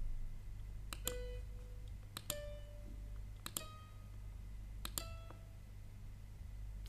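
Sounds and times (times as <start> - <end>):
quiet low hum: 0.0 - 6.8
computer keyboard or mouse clicks in music notation software: 0.9 - 2.6, 3.4 - 3.8, 4.8 - 5.4.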